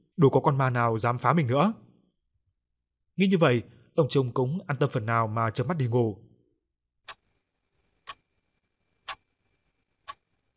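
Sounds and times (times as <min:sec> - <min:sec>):
speech: 0:00.2 - 0:01.9, 0:03.2 - 0:06.3
clock ticking at night: 0:07.1 - 0:07.3, 0:08.0 - 0:08.2, 0:10.1 - 0:10.3.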